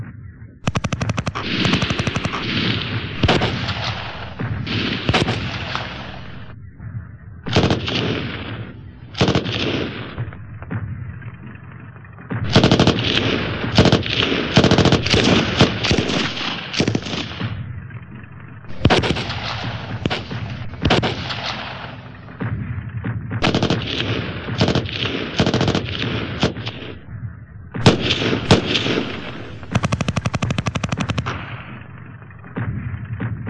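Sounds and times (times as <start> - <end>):
war sounds: 0.6 - 33.4.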